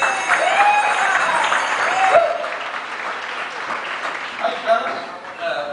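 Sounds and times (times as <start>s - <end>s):
lively crowd whooping and cheering: 0.0s - 4.0s
lively crowd clapping: 0.0s - 5.6s.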